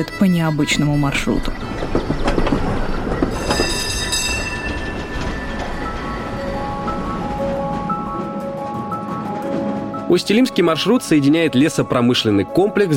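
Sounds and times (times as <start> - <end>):
speech: 0.0 - 2.0, 10.1 - 12.9
tram rumbling along its rails: 0.0 - 12.9
high metallic tram wheel squeals: 0.8 - 7.1.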